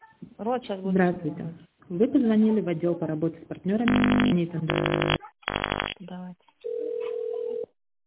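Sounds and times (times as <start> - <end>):
speech: 0.4 - 6.5
steady single-pitch telephone line tone: 3.9 - 6.0.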